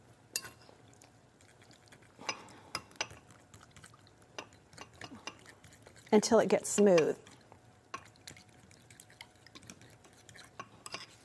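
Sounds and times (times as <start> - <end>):
soft wet stirring of sauce: 0.0 - 11.2
fork clicking and scraping against a bowl while mixing a sauce: 1.4 - 11.2
speech: 6.1 - 7.3.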